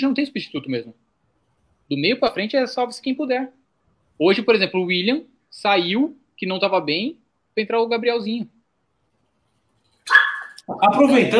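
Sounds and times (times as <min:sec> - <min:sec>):
speech: 0:00.0 - 0:01.1, 0:01.9 - 0:03.6, 0:04.2 - 0:08.6, 0:10.1 - 0:11.3
dog barking: 0:10.1 - 0:10.7.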